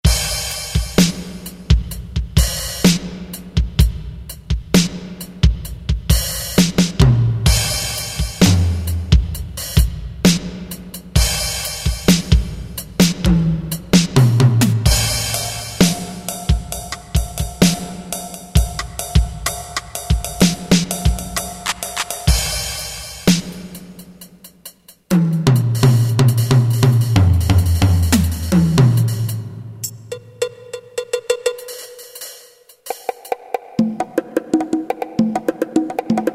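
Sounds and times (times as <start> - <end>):
Roland MT-32 rhythm set: 0.0 - 36.3.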